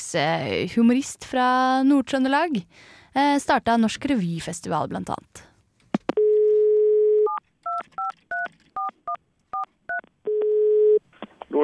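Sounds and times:
speech: 0.1 - 5.5
telephone dial tone: 6.2 - 8.9, 10.3 - 11.0
dual-pitch telephone keypad beeps: 7.3 - 10.6.

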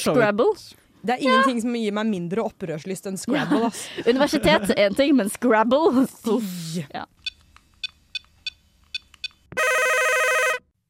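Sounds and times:
speech: 0.0 - 7.2
laughter: 3.3 - 5.1
telephone ringing: 9.6 - 10.7.

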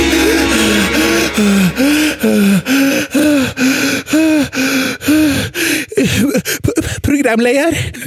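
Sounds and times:
gasping wheezing breaths of a person having an asthma attack: 0.1 - 7.1
speech: 7.3 - 8.0.

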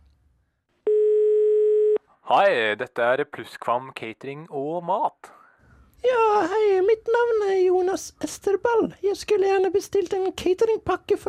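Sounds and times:
telephone dial tone from a payphone in a phone booth on a street corner: 0.9 - 2.0
speech: 2.3 - 5.4, 6.0 - 11.2.

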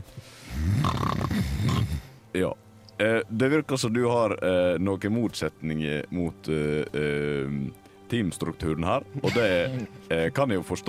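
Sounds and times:
man snoring loudly with a rattling throaty snore: 0.4 - 2.2
speech: 2.3 - 10.8.

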